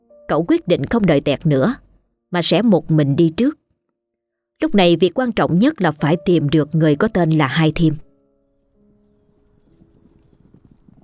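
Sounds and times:
speech: 0.3s - 3.6s, 4.6s - 8.0s
horse hooves clip-clopping: 8.9s - 11.0s.

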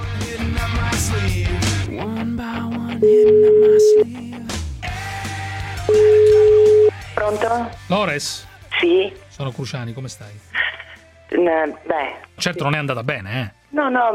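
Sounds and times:
speech: 1.0s - 4.3s, 7.3s - 10.5s, 11.3s - 14.1s
soft music: 1.8s - 14.1s
phone ringback tone beeps as a phone call is placed: 3.0s - 4.1s, 5.9s - 7.0s.

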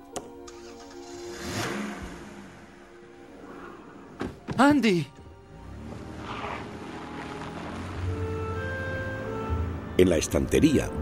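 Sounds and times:
car engine cranking, starting and revving as the car pulls away: 0.5s - 4.2s, 5.3s - 10.0s
speech: 4.6s - 5.2s, 10.0s - 11.0s.

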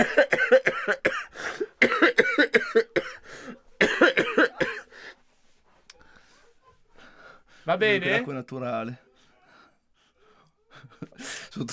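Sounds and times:
speech: 0.0s - 1.1s, 7.7s - 9.1s, 11.0s - 11.7s
person coughing: 0.0s - 4.9s.

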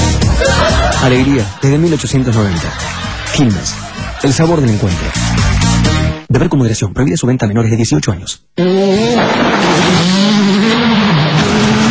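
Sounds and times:
laughter: 0.2s - 5.8s
speech: 1.0s - 10.8s
rally car engine racing in a world rally championship: 8.6s - 11.9s.

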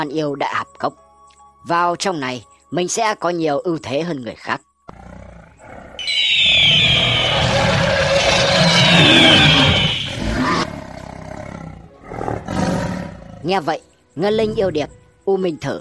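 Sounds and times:
speech: 0.0s - 1.0s, 1.6s - 4.7s, 8.9s - 9.6s, 13.4s - 15.7s
demon beasts including a tiger roaring with joy: 4.9s - 6.0s, 6.8s - 13.6s.

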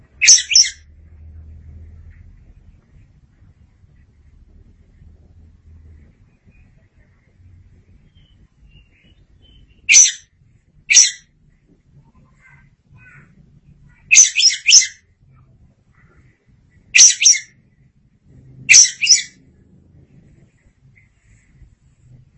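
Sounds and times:
faint low hum: 0.0s - 22.3s
Oriental magpie-robin giving short harsh buzzy bursts: 0.2s - 0.8s, 9.9s - 10.2s, 10.9s - 11.2s, 14.0s - 15.0s, 17.0s - 17.5s, 18.7s - 19.3s.

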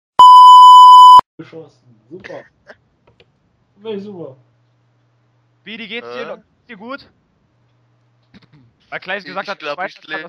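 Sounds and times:
censorship bleep tone: 0.2s - 1.2s
speech: 1.4s - 2.8s, 3.8s - 4.5s, 5.6s - 7.2s, 8.9s - 10.2s.

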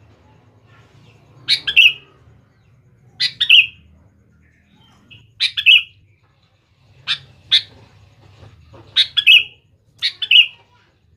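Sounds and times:
sooty-headed bulbul singing chirps and whistled note: 1.0s - 6.2s, 9.0s - 10.6s.

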